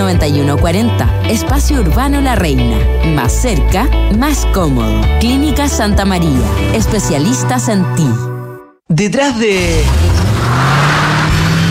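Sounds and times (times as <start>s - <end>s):
speech: 0.1s - 8.3s, 8.9s - 10.2s
car engine revving up and accelerating: 9.5s - 11.6s
steady road noise: 9.6s - 11.6s.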